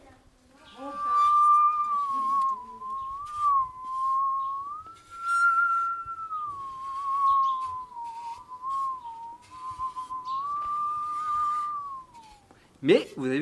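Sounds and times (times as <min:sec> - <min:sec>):
woodworking panel saw bowed as a musical saw: 0:00.7 - 0:12.4.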